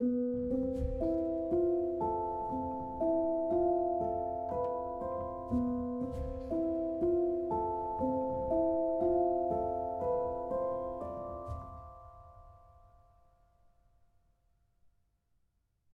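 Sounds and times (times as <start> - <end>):
background music: 0.0 - 12.6.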